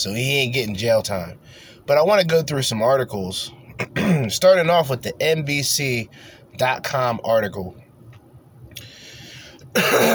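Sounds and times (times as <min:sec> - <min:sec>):
speech: 0:00.0 - 0:07.8, 0:09.8 - 0:10.1
raspy throat clearing: 0:03.8 - 0:04.3, 0:09.8 - 0:10.1.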